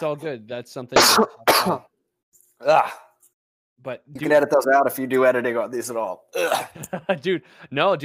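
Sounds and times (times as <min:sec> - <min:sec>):
speech: 0:00.0 - 0:01.9, 0:02.6 - 0:03.1, 0:03.8 - 0:08.0
person coughing: 0:01.0 - 0:01.9, 0:06.4 - 0:06.7.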